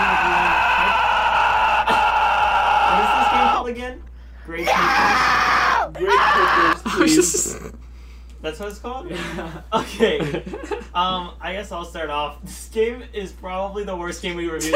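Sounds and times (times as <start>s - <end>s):
person screaming sound effect: 0.0s - 3.7s, 4.6s - 7.7s
speech: 8.4s - 14.7s
laughter: 9.1s - 11.1s.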